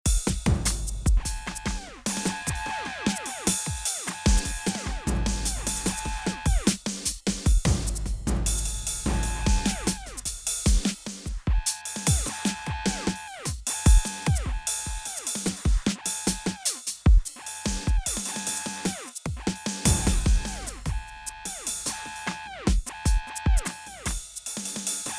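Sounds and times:
electronic drum kit from a software drum sampler: 0.0s - 25.1s.

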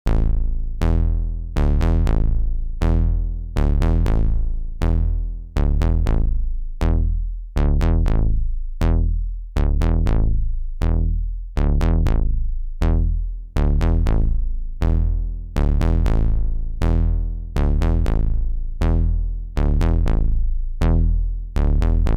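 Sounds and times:
synthesizer filter bass switching between serial and parallel routing: 0.0s - 22.1s.

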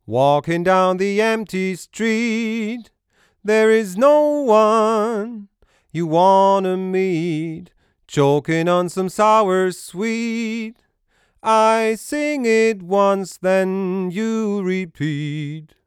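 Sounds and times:
vocal: 0.0s - 10.8s, 11.4s - 15.8s.

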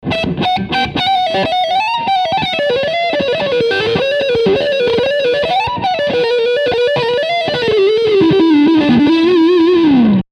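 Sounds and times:
high gain humbucker guitar lick: 0.0s - 10.2s.

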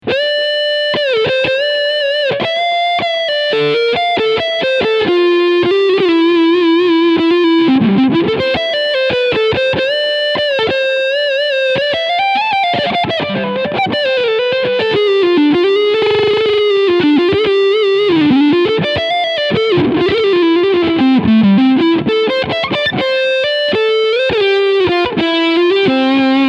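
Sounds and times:
electric guitar through front pickup: 0.0s - 26.4s.

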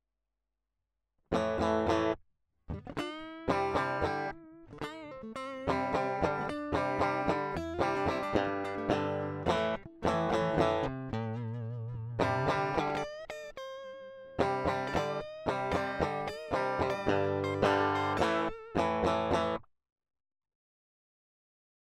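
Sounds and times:
electric guitar lead through amplifier: 1.3s - 19.6s.

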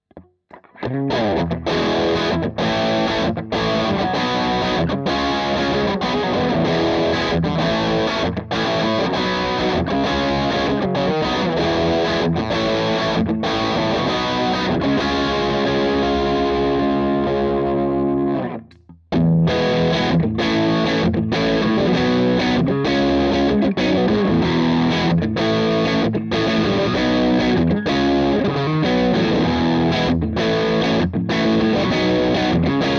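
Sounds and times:
low gain guitar riff: 0.1s - 32.9s.

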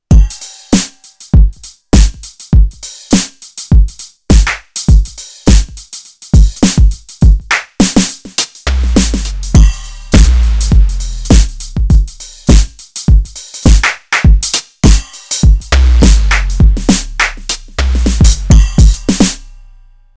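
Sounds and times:
electronic drum kit: 0.0s - 19.6s.

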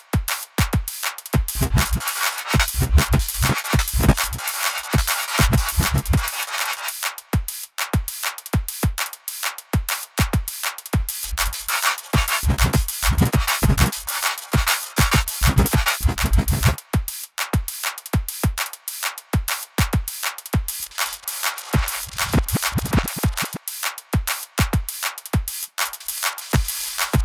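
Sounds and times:
drum loop: 0.2s - 9.0s, 9.8s - 18.6s, 19.4s - 27.2s.

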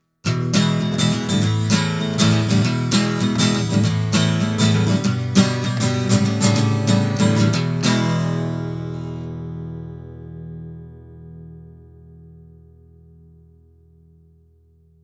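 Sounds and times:
vintage acoustic guitar: 0.0s - 15.0s.

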